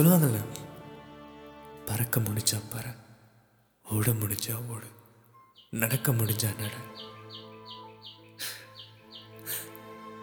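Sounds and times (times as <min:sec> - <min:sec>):
speech: 0:00.0 - 0:00.6, 0:01.9 - 0:03.0, 0:03.9 - 0:05.0, 0:05.7 - 0:07.1
bird chirping: 0:05.3 - 0:10.2.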